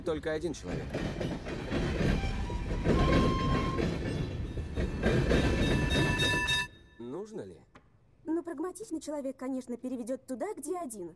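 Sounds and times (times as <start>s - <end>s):
speech: 0.0s - 2.1s, 7.2s - 11.1s
tram rushing along rails with rumble and clatter of wheels: 0.0s - 6.7s
thin metallic squealing of tram wheels: 1.4s - 6.8s.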